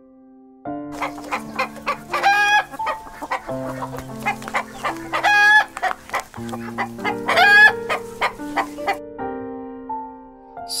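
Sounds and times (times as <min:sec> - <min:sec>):
chickens clucking: 0:01.0 - 0:09.0.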